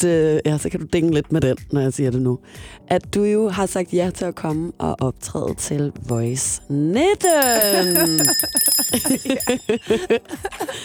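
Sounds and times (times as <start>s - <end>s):
speech: 0.0s - 10.8s
hand bell ringing: 6.1s - 6.6s, 7.2s - 10.2s
people laughing: 7.6s - 10.8s.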